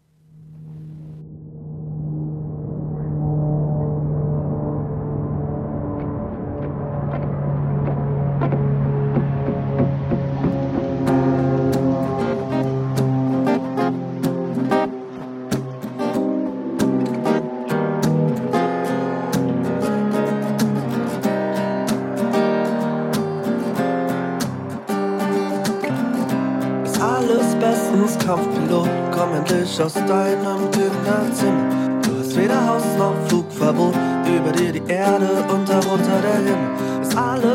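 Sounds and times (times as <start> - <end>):
deep sustained droning synth tones: 0.0 - 25.0
German pop song instrumental intro: 19.3 - 37.5.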